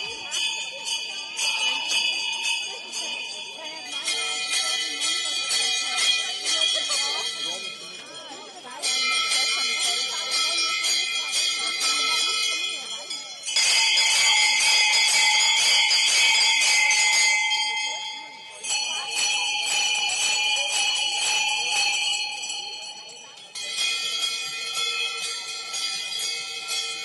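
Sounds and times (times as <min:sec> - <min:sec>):
many carnival costume bells shaken together at a Fastnacht custom in Tyrol: 0:00.0 - 0:27.0.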